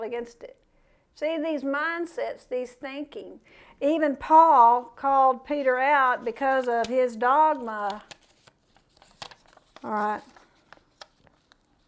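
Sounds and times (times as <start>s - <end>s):
speech: 0.1s - 0.6s, 1.2s - 8.2s, 9.8s - 10.3s
small pieces of paper being shuffled: 5.5s - 11.8s.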